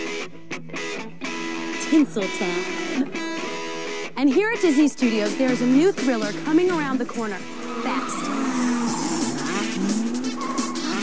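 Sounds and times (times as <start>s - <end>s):
speech: 1.9s - 3.2s, 4.2s - 8.2s
dense engine roar: 7.0s - 11.0s
car tires squealing during a stunt show at a theme park in Paris: 7.4s - 11.0s.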